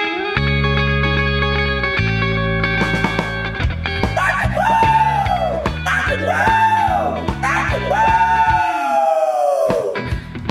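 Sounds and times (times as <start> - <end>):
loud distorted rock music with heavy bass: 0.1 - 10.4
roosters on a farm crowing: 4.2 - 10.0.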